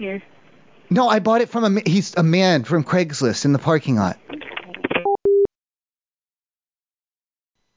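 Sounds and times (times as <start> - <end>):
speech: 0.0 - 4.2
electronic telephone tones: 5.0 - 5.5.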